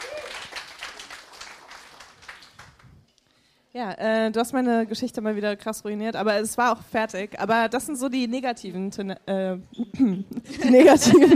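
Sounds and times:
audience applauding: 0.0 - 3.0
speech: 3.8 - 11.3.

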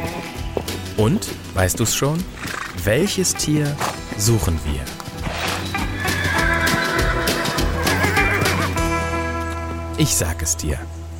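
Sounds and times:
horse hooves clip-clopping and shuffling: 0.0 - 10.4
speech: 1.0 - 5.0, 10.0 - 11.0
horse neighing with a long shrill whinny: 2.3 - 2.9, 5.2 - 9.3.

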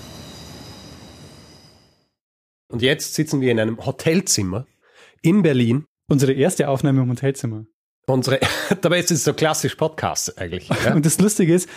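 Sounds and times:
S-Bahn commuter train rumbling past: 0.0 - 2.1
speech: 2.7 - 11.7
laughter: 10.6 - 11.7.

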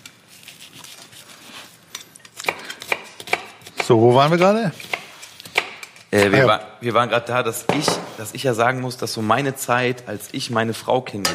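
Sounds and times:
knife chopping food in a kitchen: 2.4 - 6.4
speech: 3.9 - 4.9, 6.1 - 11.3.

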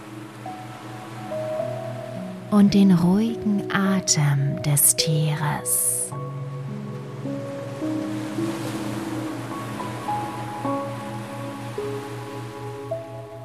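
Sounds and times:
ocean waves washing ashore: 0.0 - 4.2, 4.8 - 13.4
gentle sustained musical tones: 0.0 - 13.4
speech: 2.5 - 6.4.

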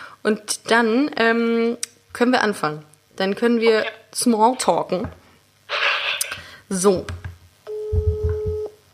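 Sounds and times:
speech: 0.2 - 5.2, 6.7 - 7.2
steady mid-pitched telephone ringback tone: 7.7 - 8.8.

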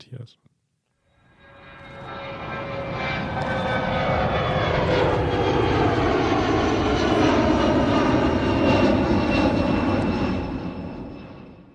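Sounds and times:
speech: 0.1 - 0.5
plane engine droning with a whining tone as the aircraft passes: 1.1 - 11.7.

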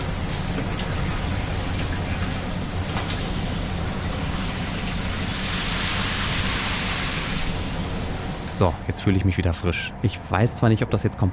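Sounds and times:
shower water spraying in a sleeper car of a night train: 0.0 - 9.0
low rumbling hum: 0.0 - 11.0
speech: 8.6 - 11.3.

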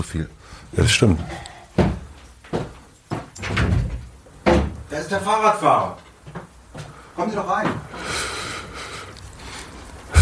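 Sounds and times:
speech: 0.0 - 1.9, 5.0 - 6.1, 7.2 - 8.2
dull knocks of a window being opened: 1.8 - 4.9.

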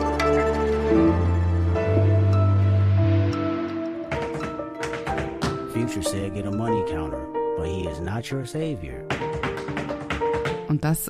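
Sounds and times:
sustained musical tones: 0.0 - 9.1
tap-dance shoes tapping: 4.1 - 5.8, 9.1 - 11.0
speech: 8.2 - 9.2, 10.7 - 11.0.

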